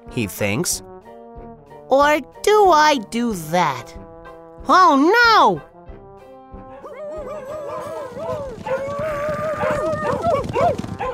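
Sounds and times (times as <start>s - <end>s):
speech: 0.2s - 0.9s, 1.9s - 4.0s, 4.6s - 5.7s
pack of dogs howling and yelping: 6.6s - 11.1s.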